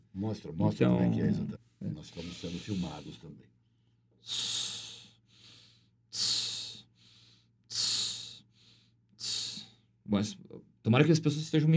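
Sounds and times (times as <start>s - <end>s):
speech: 0.2s - 3.6s, 4.2s - 4.6s, 10.1s - 11.7s
soft inhales: 2.2s - 3.2s, 4.2s - 9.9s
strong hissing exhales through pursed lips: 4.2s - 9.8s.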